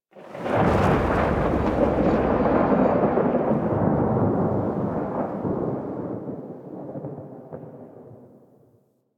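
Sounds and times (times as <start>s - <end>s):
rolling thunder outdoors: 0.2s - 8.4s.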